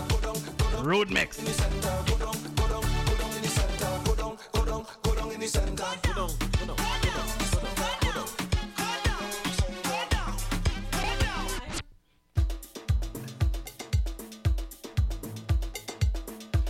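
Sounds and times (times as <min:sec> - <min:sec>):
upbeat carnival soca track: 0:00.0 - 0:11.8, 0:12.4 - 0:16.6
speech: 0:00.8 - 0:03.0, 0:05.4 - 0:07.4.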